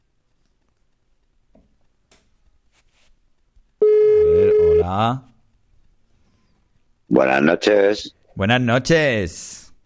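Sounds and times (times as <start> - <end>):
electronic ringback tone of an outgoing phone call: 3.8 - 4.9
speech: 4.9 - 5.3, 7.1 - 9.7.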